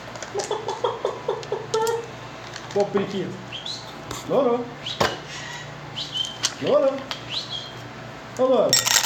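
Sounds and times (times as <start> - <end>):
speech: 0.3 - 0.9, 2.8 - 3.5, 4.3 - 5.0, 6.6 - 7.2, 8.4 - 8.9
chicken clucking: 0.3 - 2.1.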